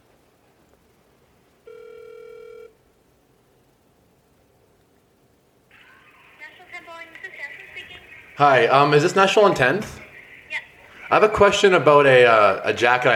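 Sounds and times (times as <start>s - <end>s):
ringback tone on an outgoing phone call: 1.7s - 2.8s
faint voice over the phone line: 5.7s - 11.4s
speech: 8.4s - 10.0s, 11.1s - 13.1s.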